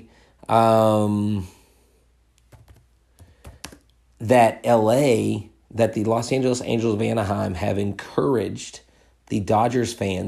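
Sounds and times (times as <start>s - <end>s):
speech: 0.4s - 1.6s, 4.2s - 10.2s
typing on a computer keyboard: 2.5s - 3.8s.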